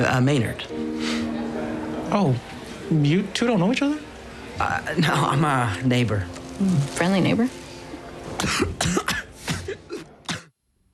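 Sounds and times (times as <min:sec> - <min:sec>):
speech: 0:00.0 - 0:01.1, 0:02.1 - 0:04.0, 0:04.6 - 0:07.6, 0:08.4 - 0:09.2
harsh coughing: 0:08.4 - 0:10.6.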